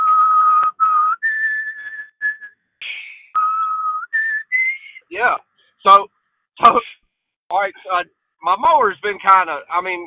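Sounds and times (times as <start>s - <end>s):
person whistling a funeral tune for fallen soldiers: 0.0s - 5.1s
speech: 5.2s - 6.9s, 7.5s - 10.0s.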